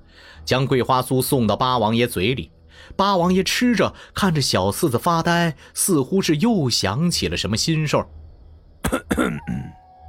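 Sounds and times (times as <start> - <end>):
speech: 0.2 - 8.2, 8.9 - 9.8
soft cough: 8.8 - 9.7.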